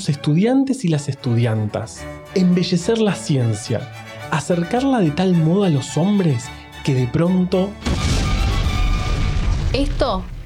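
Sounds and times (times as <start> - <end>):
speech: 0.0 - 8.1, 9.7 - 10.4
crackling debris: 7.8 - 10.4
deep rumbling explosion with heavy low-end roar: 7.8 - 10.4.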